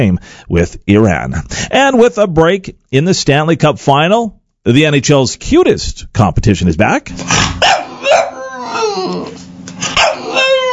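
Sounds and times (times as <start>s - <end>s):
speech: 0.0s - 8.3s, 9.0s - 9.4s
rescue puppy sharp yips: 7.6s - 9.2s, 9.9s - 10.7s
rescue puppy whimpering in high wavering whines: 7.8s - 10.7s.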